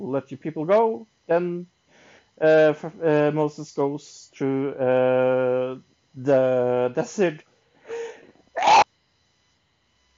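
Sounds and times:
speech: 0.0 - 1.8, 2.4 - 7.5
person sneezing: 7.9 - 8.8.

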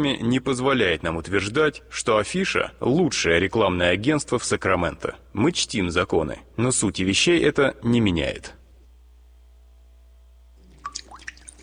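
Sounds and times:
speech: 0.0 - 8.6
water dripping in small plinking drops: 10.6 - 11.6.

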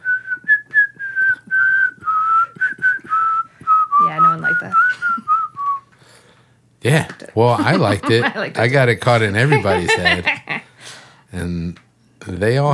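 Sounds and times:
person whistling a theme tune: 0.0 - 5.9
speech: 6.8 - 10.4, 11.4 - 12.7
laughter: 7.4 - 10.7.

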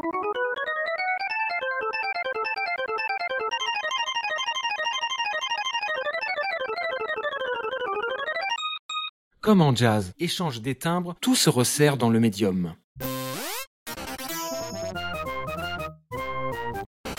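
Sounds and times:
fast synth keyboard solo in video game music: 0.0 - 8.6, 14.4 - 16.9
speech: 9.5 - 12.8.

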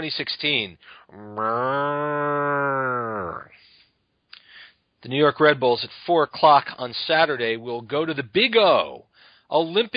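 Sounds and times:
speech: 0.0 - 3.7, 5.0 - 9.9
herd of cows mooing: 1.2 - 3.5.

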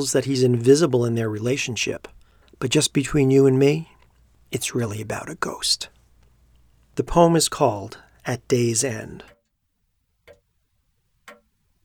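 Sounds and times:
speech: 0.0 - 6.0, 7.0 - 9.3
faint hiss: 0.0 - 9.4
clock ticking: 8.8 - 9.5, 10.2 - 10.6, 11.2 - 11.6.

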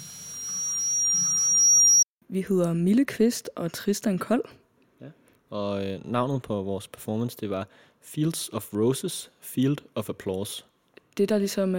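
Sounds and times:
piercing high-pitched audio feedback tone: 0.0 - 2.1
speech: 2.3 - 11.7.

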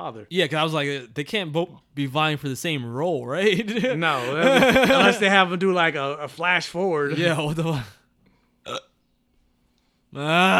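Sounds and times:
speech: 0.0 - 8.0, 8.7 - 8.9, 10.1 - 10.5
laughter: 3.4 - 5.5
person speaking loudly: 3.9 - 7.9
person hiccuping: 8.7 - 9.0.

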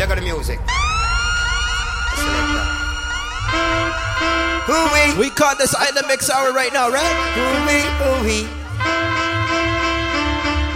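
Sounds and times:
sharp explosion-style blasts: 0.0 - 6.2
deep rumble: 0.0 - 10.0
speech: 0.3 - 0.9, 4.2 - 8.6
loud continuous wailing siren-like sweeping tones: 0.6 - 10.7.

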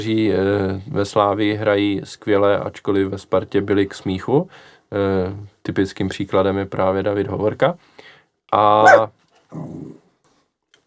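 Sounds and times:
speech: 0.0 - 10.0
dog growling: 8.8 - 10.0.

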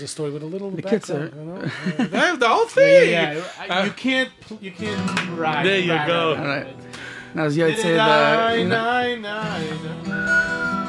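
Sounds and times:
speech: 0.0 - 10.0
laughter: 0.9 - 4.1
person whistling a short melodic phrase: 9.4 - 10.8.

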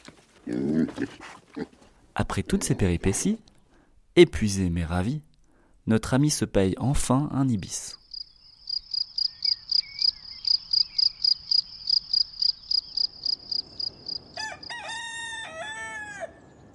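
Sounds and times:
speech: 0.5 - 3.5, 4.2 - 8.0
crickets chirping: 7.9 - 14.8
rooster crowing: 14.3 - 16.5.

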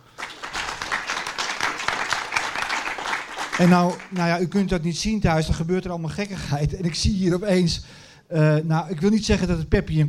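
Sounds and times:
crowd applauding: 0.0 - 4.5
speech: 3.6 - 10.0.

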